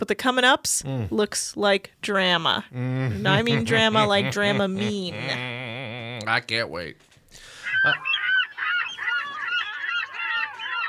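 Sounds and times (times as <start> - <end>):
speech: 0.0 - 5.6, 6.3 - 8.1
laughter: 2.8 - 6.2
seagull squawking: 7.5 - 10.8.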